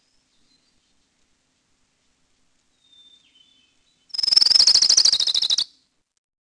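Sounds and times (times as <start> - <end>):
Orange-crowned Warbler trilling: 4.1 - 5.7.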